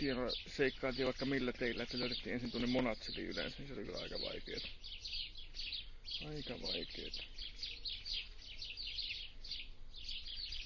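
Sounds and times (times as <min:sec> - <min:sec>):
speech: 0:00.0 - 0:05.1, 0:06.2 - 0:07.6
birds singing outdoors: 0:00.0 - 0:10.6.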